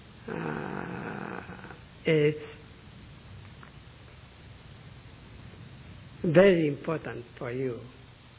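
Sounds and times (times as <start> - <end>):
deep raspy breath: 0.2 - 1.9
speech: 2.0 - 2.6, 6.3 - 8.0.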